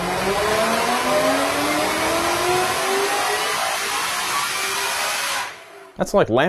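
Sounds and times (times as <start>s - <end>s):
GT500 with Whipple twin-screw supercharger revving high: 0.0s - 6.0s
speech: 0.3s - 0.6s, 6.0s - 6.4s.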